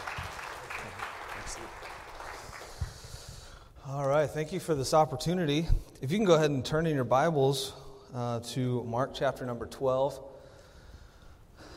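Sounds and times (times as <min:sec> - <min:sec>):
audience applauding a speaker: 0:00.0 - 0:03.0
speech: 0:03.9 - 0:10.3.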